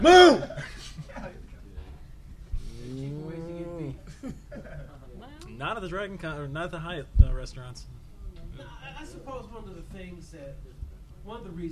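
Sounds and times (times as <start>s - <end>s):
laughter: 0.3s - 1.6s, 4.0s - 5.1s
cow mooing: 2.8s - 4.0s
speech: 5.8s - 8.0s, 8.6s - 11.6s.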